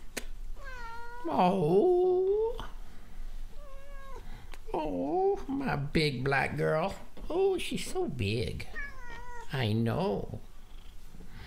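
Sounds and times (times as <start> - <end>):
cat meowing: 0.6 - 1.4, 3.6 - 4.2, 8.7 - 9.5
speech: 1.2 - 2.0, 4.8 - 8.8, 9.5 - 10.5.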